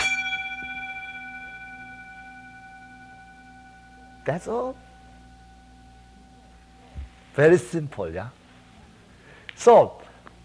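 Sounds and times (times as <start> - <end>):
single bell struck: 0.0 - 7.5
speech: 4.2 - 4.9, 7.4 - 8.4, 9.6 - 10.0.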